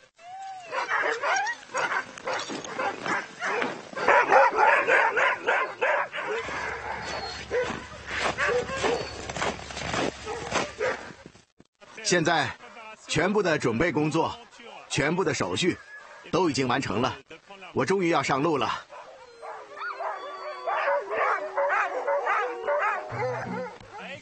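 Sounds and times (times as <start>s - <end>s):
pack of dogs barking and yipping excitedly: 0.5s - 11.2s, 15.8s - 16.4s, 18.9s - 24.1s
rising whine: 6.4s - 7.8s, 8.4s - 9.2s, 19.2s - 24.1s
speech: 12.1s - 12.6s, 13.2s - 14.4s, 15.0s - 17.2s, 17.8s - 18.8s.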